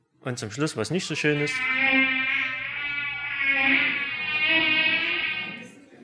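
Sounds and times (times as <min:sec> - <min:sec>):
speech: 0:00.2 - 0:02.2
mosquito whining while hovering: 0:01.1 - 0:05.7.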